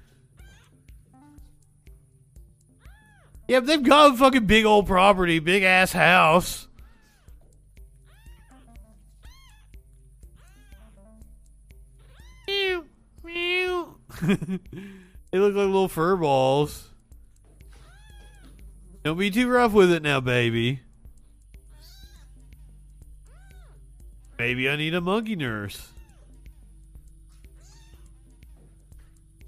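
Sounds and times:
speech: 3.5 - 6.7, 14.3 - 16.9, 19.0 - 20.8, 24.4 - 25.9
kitten meowing while carried by a monkey: 8.1 - 9.7, 12.1 - 12.8, 17.8 - 18.5, 21.7 - 22.3, 25.9 - 26.3, 27.6 - 28.1
laughter: 14.1 - 14.9.

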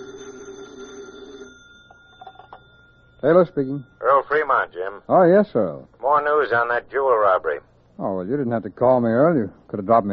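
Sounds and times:
telephone bell ringing: 0.0 - 4.7
faint noise: 0.0 - 10.1
speech: 3.2 - 10.1.

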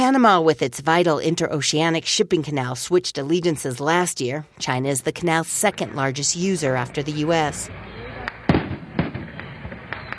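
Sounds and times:
speech: 0.0 - 8.0
fireworks bangs at the opening ceremony of a container port at the Panama Canal: 5.6 - 10.1
fireworks crackling pops at the opening ceremony of a container port at the Panama Canal: 8.2 - 10.1.

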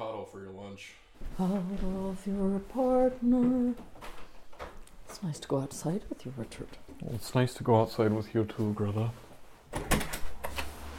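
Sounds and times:
speech: 0.3 - 3.9, 5.2 - 10.0
door being pushed shut: 9.7 - 10.7.

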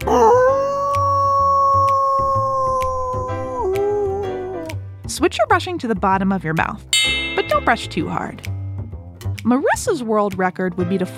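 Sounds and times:
person howling like a dog: 0.1 - 4.7
speech: 5.2 - 8.5, 9.4 - 11.1
light rhythmic music bed: 7.0 - 8.6.

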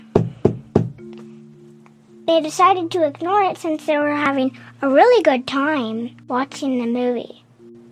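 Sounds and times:
firm knocking on a wooden door: 0.2 - 1.0
speech: 2.3 - 7.4.

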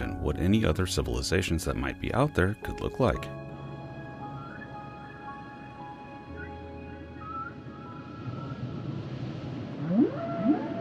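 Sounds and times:
speech: 0.2 - 3.4
whale song played from a CD: 4.2 - 10.7
steady rumbling undersea wash: 6.4 - 10.7.

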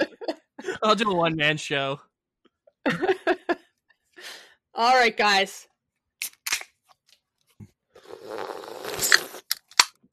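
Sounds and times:
laughter: 0.0 - 1.4, 2.9 - 3.6
speech: 0.8 - 2.1, 4.8 - 5.7
sharp crunchy bites: 6.2 - 6.8, 8.8 - 10.0
quick smacking bursts: 8.0 - 9.6.

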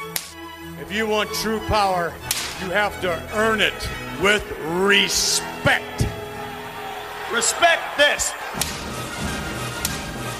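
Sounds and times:
open-hand slap to the face: 0.1 - 0.4, 2.3 - 2.6, 8.6 - 8.9, 9.8 - 10.2
speech: 0.8 - 6.0, 7.3 - 8.8
dense steady roar of crowd noise: 4.1 - 10.3.

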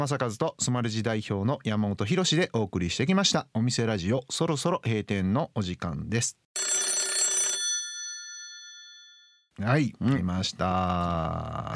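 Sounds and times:
speech: 0.0 - 6.8, 9.6 - 11.7
telephone bell ringing before an answering-machine message: 6.6 - 9.5.

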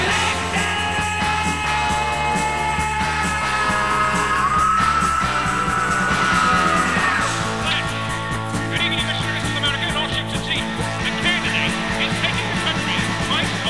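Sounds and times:
male rock singer sustained strained scream: 0.0 - 10.2
loud dense rock guitars: 0.0 - 13.6
rock band drums: 0.0 - 13.6.

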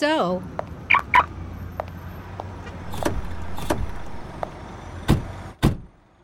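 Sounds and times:
car doors shutting: 2.7 - 5.9.

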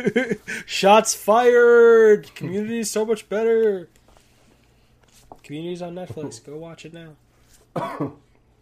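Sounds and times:
speech: 0.0 - 4.0, 5.4 - 8.2
harsh coughs: 7.7 - 8.3.

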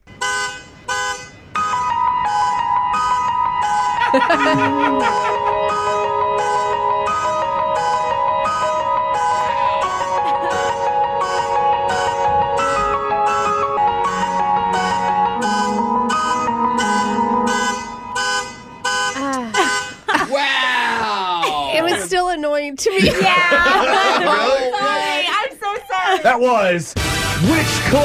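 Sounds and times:
car alarm going off outside an apartment: 0.1 - 20.0
keyboard playing sustained chords and melody: 1.6 - 19.6
laughter: 4.0 - 6.2, 9.5 - 10.8, 19.2 - 22.3, 22.9 - 26.6
speech: 4.1 - 5.4, 26.2 - 28.0.

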